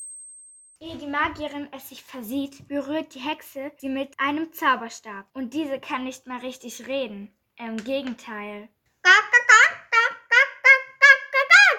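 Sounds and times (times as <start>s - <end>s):
speech: 0.8s - 9.3s
person imitating chicken clucking: 9.0s - 11.7s.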